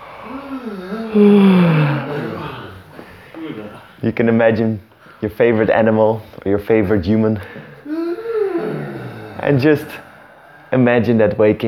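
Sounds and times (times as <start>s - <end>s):
long voiced human yawn: 0.0s - 3.8s, 7.8s - 10.7s
speech: 0.2s - 2.5s, 4.0s - 8.0s, 9.4s - 10.1s, 10.7s - 11.6s.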